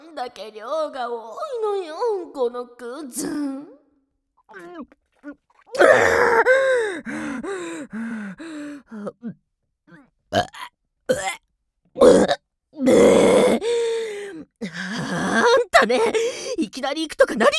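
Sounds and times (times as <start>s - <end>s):
speech: 0.2s - 3.7s, 4.5s - 9.4s, 15.8s - 17.5s
loud burp: 4.5s - 6.6s, 10.3s - 11.4s, 12.0s - 13.6s
gasps, groans and grunting vocal noises: 4.5s - 11.4s, 12.0s - 16.8s.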